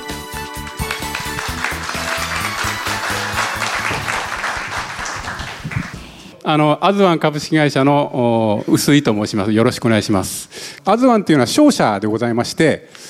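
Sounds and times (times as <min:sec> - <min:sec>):
loud upbeat walk-on music with a strong regular beat: 0:00.0 - 0:05.8
audience applause at an investor relations seminar: 0:00.7 - 0:06.3
speech: 0:06.4 - 0:13.0.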